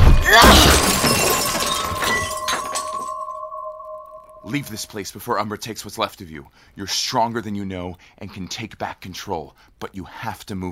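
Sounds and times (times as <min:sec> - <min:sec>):
crystal ball being smashed: 0:00.0 - 0:04.9
tinkling shards of a smashed crystal ball: 0:00.4 - 0:04.9
speech: 0:04.5 - 0:10.6.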